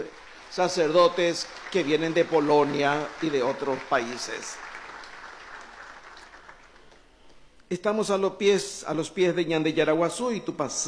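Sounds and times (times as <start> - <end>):
speech: 0.0 - 4.6, 7.7 - 10.8
congregation applauding guests at a Sunday Mass: 0.0 - 7.1.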